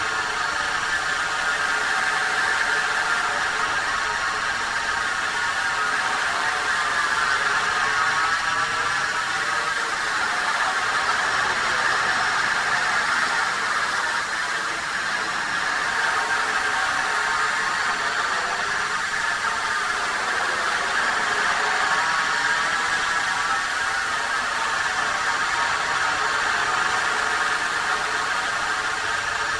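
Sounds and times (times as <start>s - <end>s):
drone hovering close: 0.0s - 29.5s.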